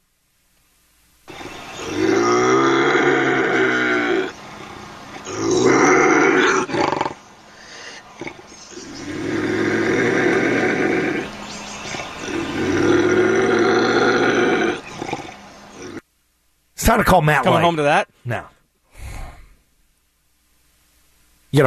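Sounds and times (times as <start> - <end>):
caged bobcat growling and snarling: 1.3 - 16.0
speech: 16.9 - 18.5.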